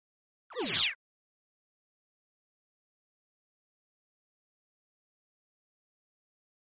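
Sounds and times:
electric laser pulse: 0.6s - 1.0s.

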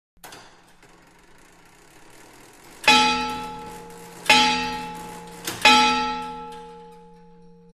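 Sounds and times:
19th century tower clock bell striking: 2.8s - 7.7s.

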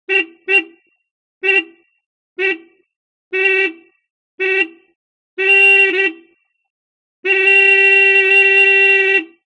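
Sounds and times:
Austin truck horn: 0.0s - 6.6s, 7.2s - 9.5s.

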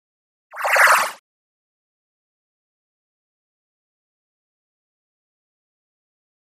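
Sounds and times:
fluttering electronic wash: 0.6s - 1.2s.

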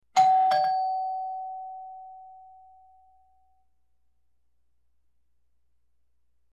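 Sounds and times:
ding dong doorbell: 0.2s - 3.6s.

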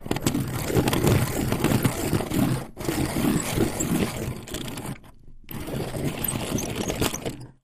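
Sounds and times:
circular grinder grinding metal: 0.4s - 7.4s.

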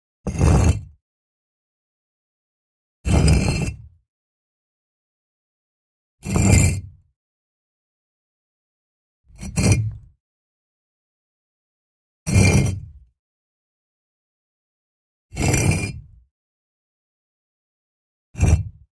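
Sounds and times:
heavy stone brick being pushed: 0.3s - 1.0s, 3.1s - 3.9s, 6.2s - 6.9s, 9.4s - 10.1s, 12.3s - 12.9s, 15.4s - 16.0s, 18.4s - 18.8s.

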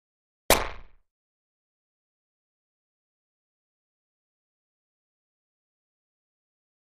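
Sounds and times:
reverberant electric hit: 0.5s - 1.0s.

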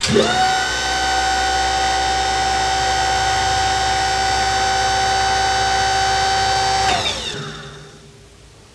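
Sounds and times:
35mm film projector running: 0.0s - 8.0s.

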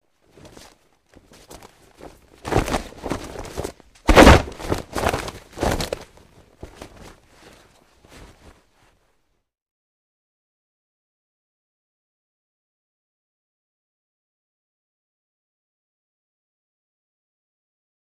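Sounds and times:
cloth body grab: 0.3s - 8.9s.

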